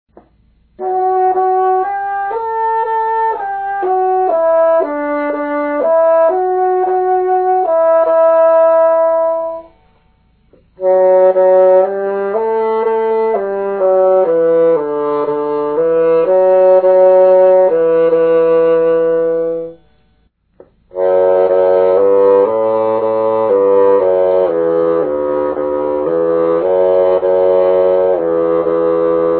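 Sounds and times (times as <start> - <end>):
bassoon: 0.2 - 29.3.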